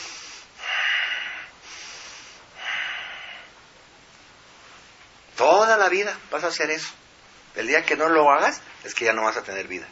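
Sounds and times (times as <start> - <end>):
slow deep breaths in and out through the nose: 0.0 - 3.6
speech: 5.8 - 7.0, 7.6 - 9.8.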